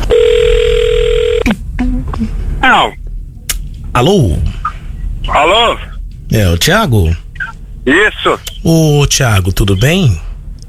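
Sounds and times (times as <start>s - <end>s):
telephone ringing or dial tone for a call being placed: 0.1s - 1.5s
speech: 2.7s - 3.0s, 3.9s - 4.4s, 5.2s - 7.2s, 7.8s - 10.2s.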